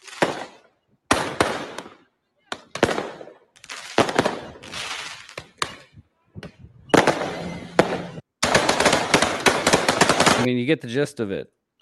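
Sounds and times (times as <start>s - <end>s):
fireworks crackling from a played video: 0.0s - 10.5s
gunfire bursts from a played video: 0.1s - 2.0s, 2.6s - 3.4s, 4.0s - 4.8s, 6.9s - 10.5s
speech: 10.5s - 11.8s.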